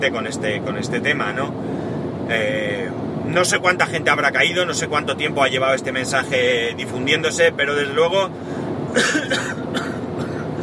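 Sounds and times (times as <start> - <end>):
speech: 0.0 - 10.0
coughing: 8.9 - 10.5.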